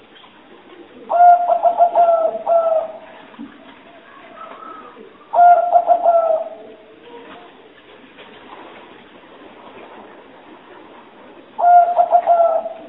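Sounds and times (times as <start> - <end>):
spotted dove rhythmic husky coos: 0.8 - 3.3, 4.2 - 7.0, 11.6 - 12.8.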